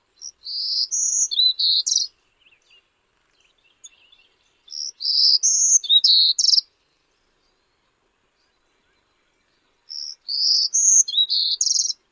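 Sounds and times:
bird song: 0.0s - 12.1s.

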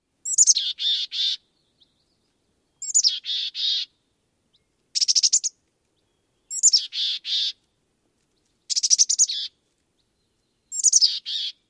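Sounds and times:
mountain chickadee calls: 0.2s - 1.5s, 2.8s - 4.0s, 4.9s - 5.6s, 6.4s - 7.6s, 8.7s - 9.6s, 10.7s - 11.6s.

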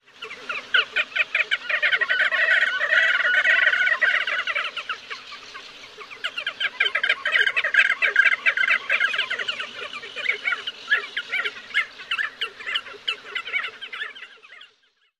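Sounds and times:
Crested Auklet calls at colony: 0.0s - 14.8s.

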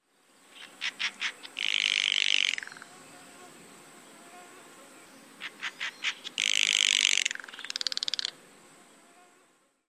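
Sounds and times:
Steller's jay rattle calls: 0.5s - 3.0s, 5.4s - 8.4s.

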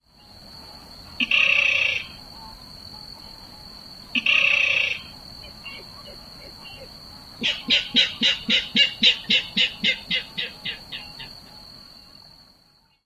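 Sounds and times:
bird k-kerrr call: 4.2s - 11.6s.

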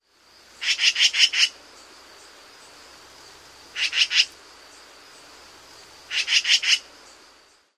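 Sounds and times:
shek-shek-shek calls: 0.6s - 1.5s, 3.8s - 4.3s, 6.1s - 6.8s.

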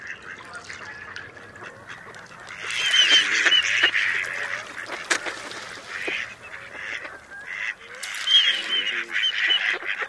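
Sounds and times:
male Mallard courtship whistles: 2.7s - 4.0s, 6.4s - 9.7s.

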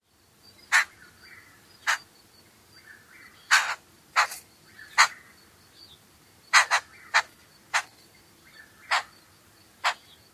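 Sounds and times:
bird churr calls: 0.5s - 10.3s.

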